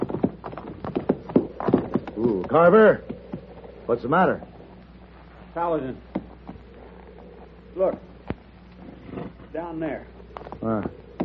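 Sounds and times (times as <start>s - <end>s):
horse hooves clip-clopping as a horse is ridden up a hillside: 0.0s - 11.2s
speech: 2.2s - 3.1s, 3.9s - 4.5s, 5.6s - 6.1s, 7.8s - 8.1s, 9.6s - 11.0s.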